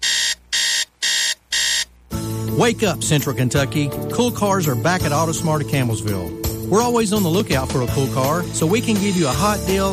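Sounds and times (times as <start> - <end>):
electronic alarm clock beeping: 0.0 - 1.9
speech: 2.6 - 9.9.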